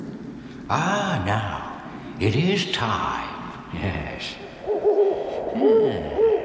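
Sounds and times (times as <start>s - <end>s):
speech: 0.7s - 1.6s, 2.2s - 4.4s
owl hooting: 4.4s - 6.4s.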